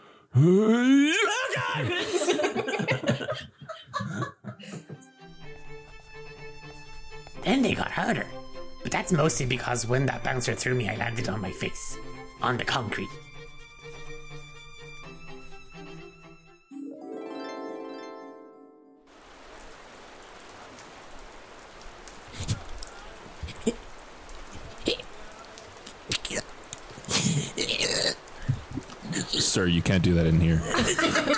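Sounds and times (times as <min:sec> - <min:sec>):
speech: 0:00.4 - 0:01.0, 0:01.6 - 0:02.2, 0:07.9 - 0:08.4, 0:09.0 - 0:13.3, 0:29.7 - 0:31.3
laughter: 0:01.2 - 0:05.1, 0:30.5 - 0:31.3
rain falling outdoors: 0:05.3 - 0:15.4, 0:19.1 - 0:31.3
tonal musical sound: 0:16.7 - 0:19.1
water drips and spatters: 0:19.2 - 0:30.4.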